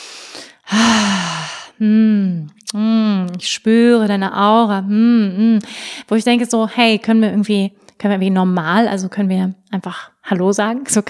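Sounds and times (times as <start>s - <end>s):
long loud voiced exhale like a heavy sigh: 0.0s - 1.8s
quick airy breath drawn in: 0.0s - 1.8s
speech: 3.4s - 11.0s.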